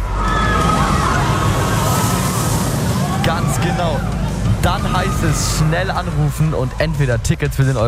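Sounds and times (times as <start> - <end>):
roller coaster ride rushing rumble: 0.0 - 7.8
speech: 3.8 - 7.8.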